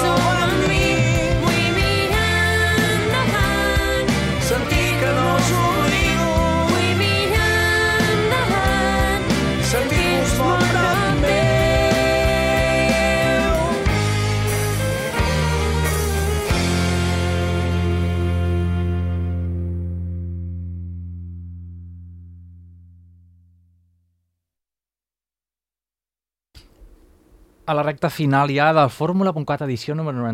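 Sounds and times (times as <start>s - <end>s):
full-band rock song with drums, bass and guitars: 0.0s - 20.9s
speech: 27.7s - 30.3s.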